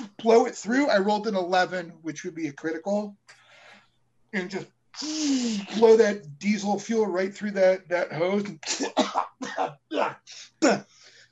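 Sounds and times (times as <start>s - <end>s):
speech: 0.2s - 3.3s, 4.3s - 11.3s
harsh raspy coughs: 8.6s - 9.7s.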